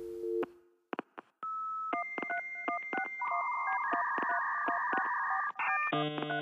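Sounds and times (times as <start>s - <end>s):
rhythmic phone dialing beeps: 1.4s - 6.3s
electronic music built from dial-up modem and phone-line sounds: 2.0s - 6.3s.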